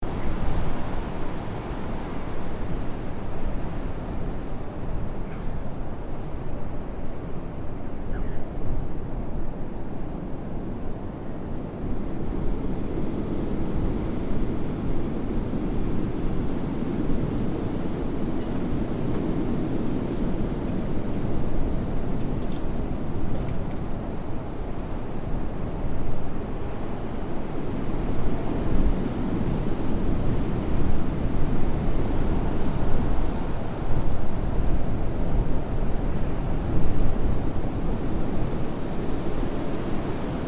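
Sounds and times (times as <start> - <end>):
strong wind gusts: 0.0 - 40.4.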